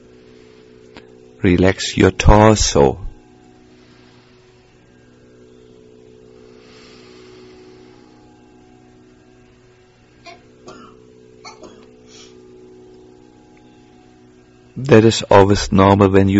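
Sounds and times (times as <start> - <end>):
steady low humming background: 0.0 - 16.3
speech: 1.0 - 3.0, 14.9 - 16.3
person coughing: 10.3 - 11.9.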